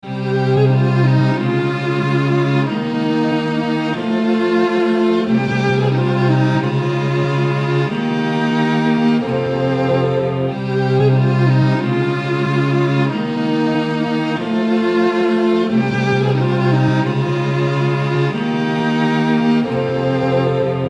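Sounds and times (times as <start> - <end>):
string loop in F minor: 0.0 - 20.8.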